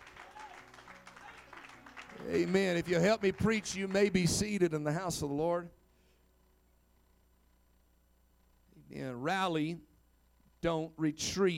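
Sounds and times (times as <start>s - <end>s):
crowd clapping in a large room: 0.0s - 4.7s
speech: 2.3s - 5.8s, 9.2s - 9.9s, 10.6s - 11.5s.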